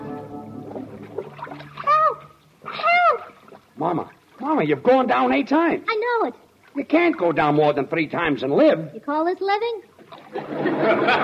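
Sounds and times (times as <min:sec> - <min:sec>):
heavy splashing and churning sea water after a ship hits a rock: 0:00.2 - 0:04.9, 0:09.9 - 0:10.7
speech: 0:03.9 - 0:11.1
laughter: 0:10.3 - 0:11.1.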